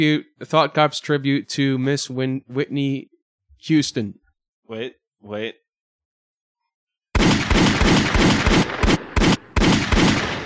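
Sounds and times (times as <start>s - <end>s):
speech: 0.0s - 5.6s
gunfire from a 21-gun salute: 7.2s - 10.4s.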